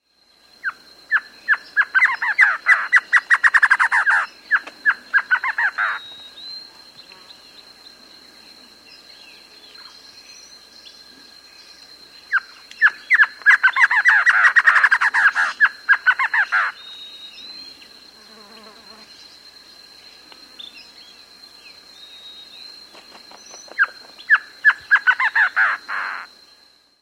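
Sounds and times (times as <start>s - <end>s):
Silvery-Cheeked Antshrike calling in South America: 0.6s - 6.4s, 12.3s - 17.0s, 23.8s - 26.3s.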